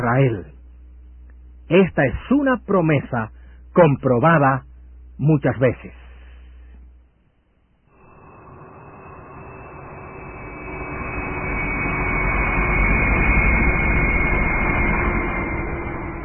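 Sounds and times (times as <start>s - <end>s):
speech: 0.1s - 0.5s, 1.7s - 6.0s
Cypriot airline passenger plane engine roar: 7.9s - 16.2s.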